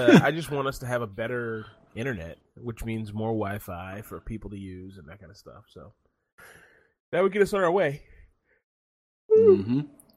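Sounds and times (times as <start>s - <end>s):
speech: 0.0s - 8.1s, 9.3s - 10.0s
person yawning into the microphone: 9.3s - 9.9s.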